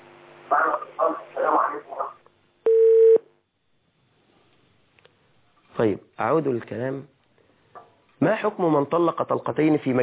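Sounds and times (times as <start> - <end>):
speech: 0.5 - 2.2, 5.8 - 7.1, 8.2 - 10.0
telephone tone of an incoming call connecting on a call-in line: 2.7 - 3.2.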